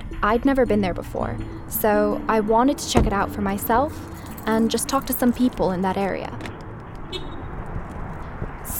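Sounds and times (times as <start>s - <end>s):
speech: 0.2s - 6.5s
distant interstate freeway traffic rushing: 3.1s - 8.7s.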